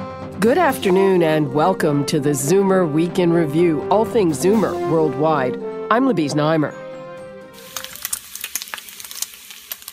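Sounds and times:
speech: 0.4s - 6.8s
bacon sizzling in a pan with pops and crackles: 7.6s - 9.9s.

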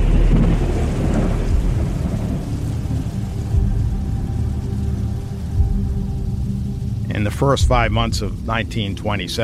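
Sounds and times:
heavy thunder rolling and rumbling: 0.0s - 9.4s
steady wash of rain: 0.0s - 9.4s
speech: 7.3s - 9.4s.

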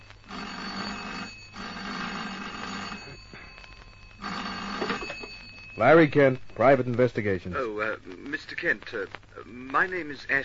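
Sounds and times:
old-fashioned office telephone bell ringing: 0.0s - 6.3s
speech: 5.8s - 10.4s.

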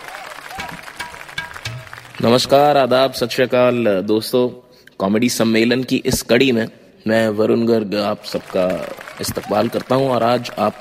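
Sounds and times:
audience clapping: 0.0s - 2.9s, 8.0s - 10.7s
speech: 2.2s - 10.7s.

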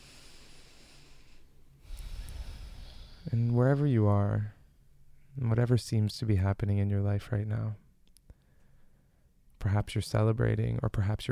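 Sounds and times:
people taking a deep breath together during a guided breathing moment: 0.0s - 3.3s
steady hiss: 0.0s - 11.3s
speech: 3.3s - 4.6s, 5.4s - 7.8s, 9.6s - 11.3s.

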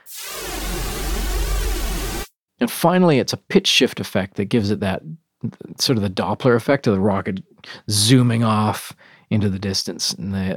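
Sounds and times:
synthesizer noise generator hissing with chorus and distortion: 0.0s - 2.3s
speech: 2.6s - 10.5s.

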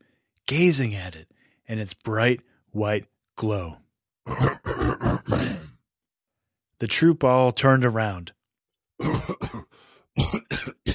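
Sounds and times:
speech: 0.5s - 5.5s, 6.8s - 8.4s, 9.0s - 9.4s
man coughing uncontrollably in a fit of harsh rasping coughs: 4.3s - 5.8s, 9.0s - 10.9s.

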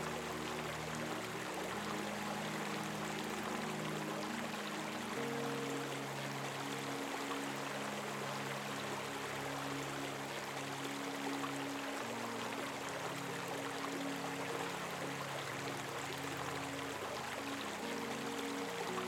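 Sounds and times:
murmuring stream of flowing water: 0.0s - 19.0s
soft sustained low tones of a gentle melody: 0.0s - 19.0s.

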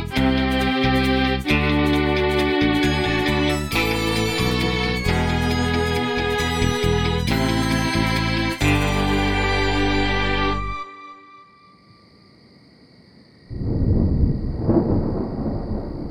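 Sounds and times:
loud sustained musical chord: 0.2s - 11.8s
deep rolling thunder rumbling: 13.5s - 16.1s.

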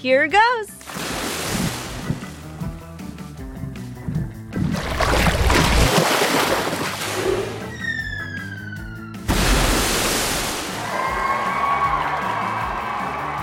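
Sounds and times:
speech: 0.0s - 0.8s
blue whale breaching and crashing down with huge splash: 0.8s - 2.3s, 4.5s - 7.7s, 9.3s - 11.1s
whale watchers cheering faintly: 10.6s - 13.4s.

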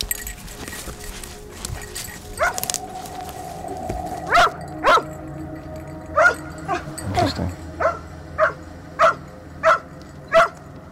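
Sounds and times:
dog barking at the water: 2.4s - 2.7s, 4.3s - 5.1s, 6.2s - 10.6s.

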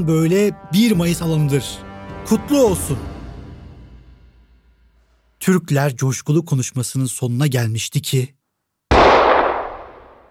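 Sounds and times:
speech: 0.0s - 3.1s, 5.4s - 8.4s
loud gunshot with long echo: 8.9s - 10.3s.

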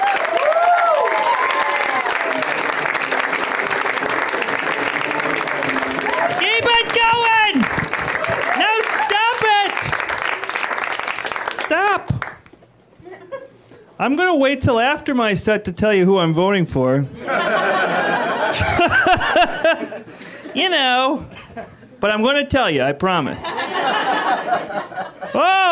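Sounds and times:
whoops and shouted cheers: 0.0s - 2.5s, 6.0s - 9.6s, 25.4s - 25.7s
crowd applauding a stand-up comic: 0.0s - 12.5s
laughter: 13.0s - 13.6s, 17.2s - 20.6s, 23.5s - 25.7s
speech: 14.0s - 17.2s, 20.6s - 21.2s, 22.0s - 23.5s.

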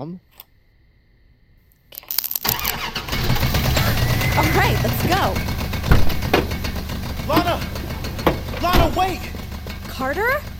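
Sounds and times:
speech: 0.0s - 0.5s, 4.4s - 5.5s, 8.8s - 9.3s, 10.0s - 10.5s
hotwired car engine cranking, starting and idling: 2.4s - 10.5s.

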